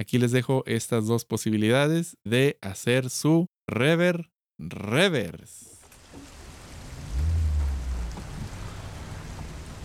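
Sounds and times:
speech: 0:00.0 - 0:05.7
steady rain hissing across a city: 0:05.7 - 0:09.8
deep low rumble: 0:06.8 - 0:09.8.

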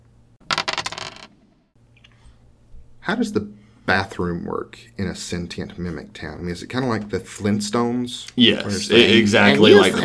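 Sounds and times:
dice clattering across a hard surface: 0:00.4 - 0:01.4
speech: 0:03.1 - 0:10.0.

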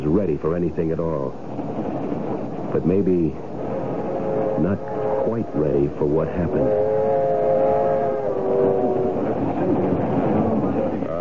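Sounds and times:
passenger train rolling along the rails: 0:00.0 - 0:11.1
speech: 0:00.2 - 0:01.7, 0:02.7 - 0:03.5, 0:04.6 - 0:07.0
sustained tonal hums: 0:02.4 - 0:11.1.

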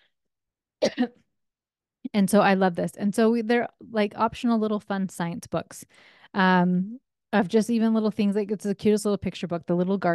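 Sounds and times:
throat clearing and cough from a person with a very dry throat: 0:00.8 - 0:01.2
speech: 0:01.0 - 0:01.2, 0:02.1 - 0:10.1.

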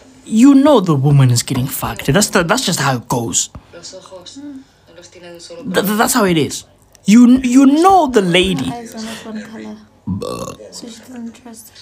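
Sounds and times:
speech: 0:00.3 - 0:11.8
deep rumbling loud burp: 0:10.0 - 0:10.7.

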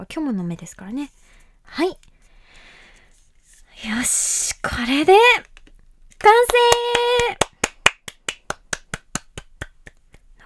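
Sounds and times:
speech: 0:00.0 - 0:02.1, 0:03.8 - 0:05.5, 0:06.2 - 0:07.5
single person clapping hands: 0:06.4 - 0:10.3.

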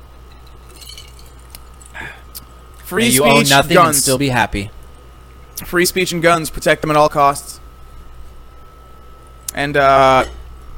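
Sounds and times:
drinking glasses clinking in a toast: 0:00.3 - 0:01.5
speech: 0:02.9 - 0:04.8, 0:05.6 - 0:07.5, 0:09.6 - 0:10.4.

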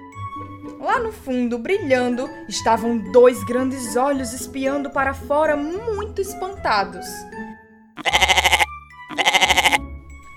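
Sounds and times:
speech: 0:00.4 - 0:07.4
goat bleating: 0:08.0 - 0:09.8.

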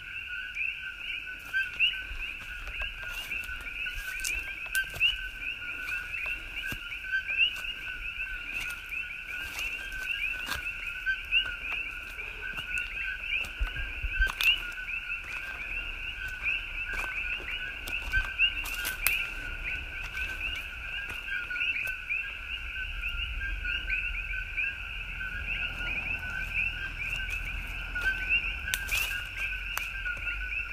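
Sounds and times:
chorus of many frogs calling outdoors: 0:00.0 - 0:30.7.

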